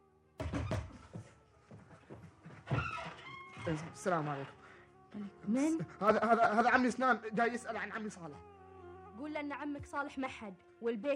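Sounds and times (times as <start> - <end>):
heavy knocking on a wooden door: 0.4 - 1.3
speech: 3.6 - 8.5, 9.2 - 11.1.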